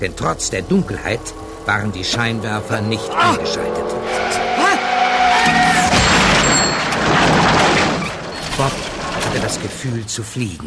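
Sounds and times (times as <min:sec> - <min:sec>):
speech: 0:00.0 - 0:04.4, 0:08.6 - 0:10.6
car tires squealing: 0:00.0 - 0:09.6
car crash: 0:05.0 - 0:10.0
car glass shattering and tinkling: 0:05.8 - 0:09.7.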